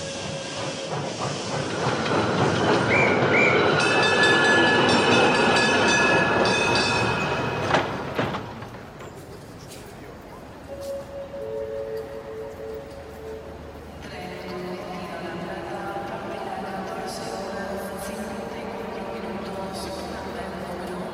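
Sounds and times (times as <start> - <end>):
train running past on the rails: 0.0 - 21.1.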